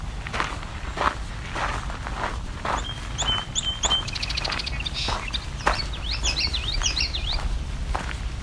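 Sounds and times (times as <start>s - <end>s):
crunching footsteps on gravel: 0.0s - 8.4s
common yellowthroat singing wichity phrases: 2.7s - 7.6s.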